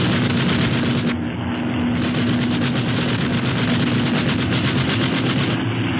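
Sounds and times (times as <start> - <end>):
rapid gunfire during an exchange of fire between vessels: 0.0 - 1.2, 2.0 - 5.7
constant engine drone: 0.0 - 5.9.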